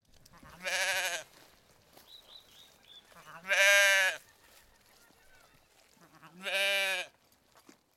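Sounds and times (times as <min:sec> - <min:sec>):
sheep bleating in Puno: 0:00.3 - 0:01.3, 0:03.1 - 0:04.2, 0:06.0 - 0:07.1.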